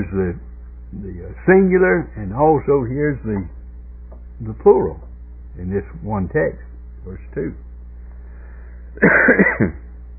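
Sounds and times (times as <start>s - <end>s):
speech: 0.0s - 3.6s, 4.4s - 7.7s, 9.0s - 9.8s
person clearing throat from a tickle in the throat: 9.0s - 9.8s
person coughing from a tickle in the throat: 9.0s - 9.8s.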